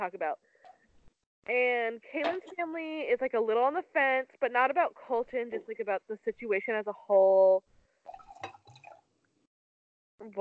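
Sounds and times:
speech: 0:00.0 - 0:00.5, 0:01.4 - 0:07.7, 0:10.2 - 0:10.3
wine poured into a glass: 0:08.0 - 0:09.0.

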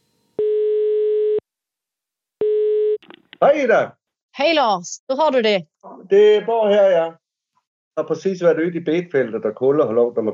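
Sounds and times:
telephone ringback tone while placing a call: 0:00.4 - 0:01.4, 0:02.4 - 0:03.0
speech: 0:03.4 - 0:07.2, 0:08.0 - 0:10.3.

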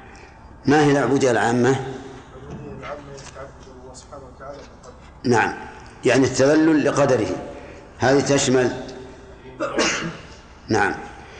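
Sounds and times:
faint hum: 0:00.0 - 0:11.3
speech: 0:00.6 - 0:02.0, 0:04.5 - 0:08.8, 0:09.6 - 0:11.1
person sneezing: 0:09.5 - 0:10.3.

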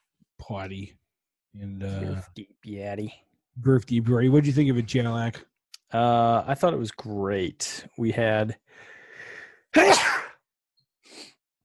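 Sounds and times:
speech: 0:00.5 - 0:09.0, 0:09.7 - 0:10.2
drawn-in breath: 0:08.7 - 0:09.7
person sneezing: 0:09.8 - 0:10.4
faint sniff: 0:11.1 - 0:11.4.

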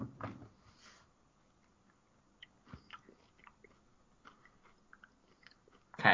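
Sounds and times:
chewing crunchy food with milk: 0:01.6 - 0:06.0
soft wet mouth sounds: 0:01.6 - 0:06.0.

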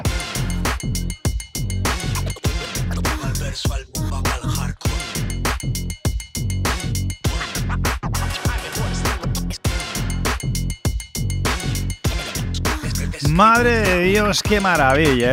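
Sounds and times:
hip-hop beat with dense punchy drums: 0:00.0 - 0:15.3
DJ turntable scratches: 0:02.0 - 0:04.6, 0:07.3 - 0:09.5
speech: 0:13.4 - 0:15.3.

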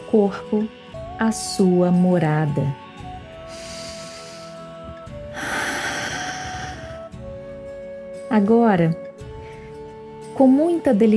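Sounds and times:
speech: 0:00.1 - 0:02.8, 0:08.3 - 0:09.0, 0:10.4 - 0:11.1
long deep breath with the mouth closed: 0:03.5 - 0:07.2.

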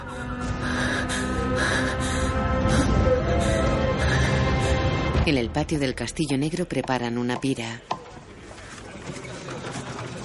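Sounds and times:
woman breathing heavily after coming out of a basement: 0:00.0 - 0:05.2
low droning music or ambience: 0:00.0 - 0:07.6
speech: 0:05.3 - 0:07.9.

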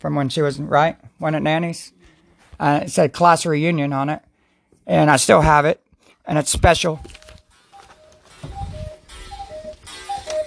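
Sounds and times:
speech: 0:00.0 - 0:02.0, 0:02.6 - 0:07.2
cuckoo clock sounding the hour with two-note cuckoo calls: 0:06.6 - 0:10.4
low mechanical whirring and clunking from the cuckoo clock clockwork: 0:07.4 - 0:10.4.

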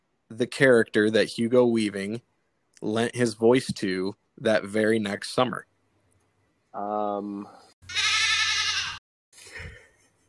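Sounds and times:
speech: 0:00.4 - 0:05.7, 0:06.8 - 0:07.6
person imitating goat bleats: 0:07.9 - 0:09.0.

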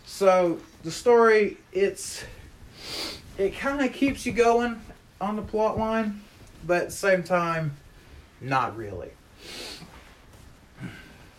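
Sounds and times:
speech: 0:00.2 - 0:07.8, 0:08.4 - 0:09.8
person sniffing with sinuses acting up in very cold weather: 0:02.7 - 0:03.3, 0:09.4 - 0:09.9.

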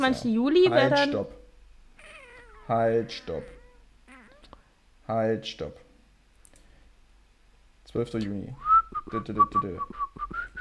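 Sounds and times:
speech: 0:00.0 - 0:01.4, 0:02.7 - 0:03.6, 0:05.1 - 0:05.8, 0:07.9 - 0:10.1
person whistling a wavering melody: 0:08.6 - 0:10.5.

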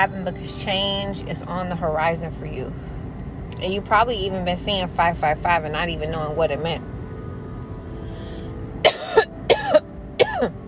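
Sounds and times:
speech: 0:00.0 - 0:02.9, 0:03.6 - 0:06.9
harsh coughs: 0:08.8 - 0:10.5.

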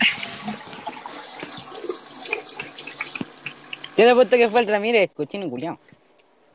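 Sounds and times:
person urinating: 0:00.0 - 0:04.7
speech: 0:04.0 - 0:06.0.

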